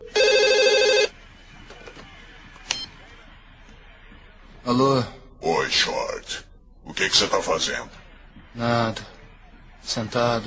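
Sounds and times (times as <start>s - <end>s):
landline telephone ringing with an electronic trill: 0.0s - 1.2s
speech: 4.7s - 6.4s, 7.0s - 8.0s, 8.6s - 9.1s, 9.8s - 10.4s.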